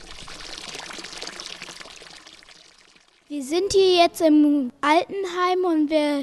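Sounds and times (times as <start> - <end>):
fountain water splashing on church square: 0.0 - 3.2
speech: 3.3 - 6.2.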